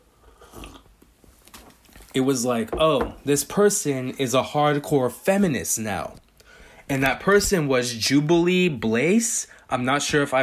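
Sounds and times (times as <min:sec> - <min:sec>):
swallow: 0:00.1 - 0:00.9
tea sip slurp: 0:00.2 - 0:00.9
speech: 0:02.1 - 0:06.2, 0:06.9 - 0:10.4.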